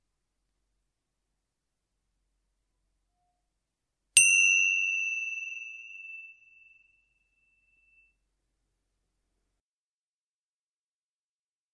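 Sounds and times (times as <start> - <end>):
bright meditation chime struck to begin a meditation session: 4.2 - 8.1.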